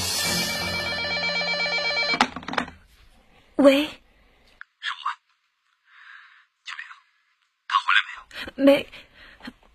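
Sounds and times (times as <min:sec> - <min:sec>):
telephone bell ringing with a metallic trill: 0:00.1 - 0:02.6
speech: 0:03.6 - 0:04.0, 0:08.6 - 0:09.6.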